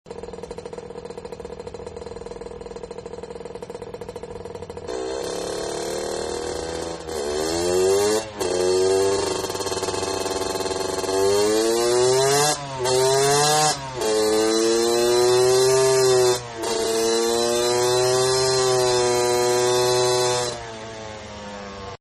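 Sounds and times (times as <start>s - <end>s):
dirt bike idling and revving: 0.1s - 22.0s.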